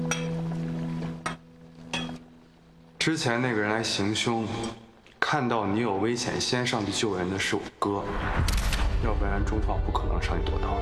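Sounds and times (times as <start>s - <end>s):
glasses clinking in a toast: 0.0s - 0.4s, 1.2s - 2.3s
speech: 3.0s - 10.8s.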